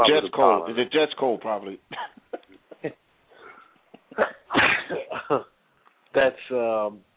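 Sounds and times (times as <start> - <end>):
speech: 0.0 - 2.2, 4.2 - 5.5, 6.2 - 7.1
person sneezing: 4.1 - 5.2.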